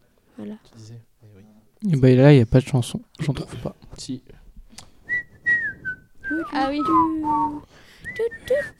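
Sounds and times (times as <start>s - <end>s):
speech: 0.4s - 4.4s, 6.5s - 8.7s
person wearing dental braces whistling a short halting melody: 5.1s - 8.7s.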